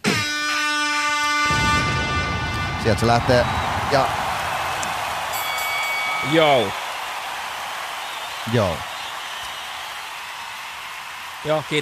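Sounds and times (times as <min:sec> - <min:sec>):
foghorn sound effect blast: 0:00.0 - 0:06.2
rush of broadband noise: 0:01.5 - 0:07.5
speech: 0:02.8 - 0:04.2, 0:06.2 - 0:06.8, 0:08.5 - 0:08.9, 0:11.4 - 0:11.8.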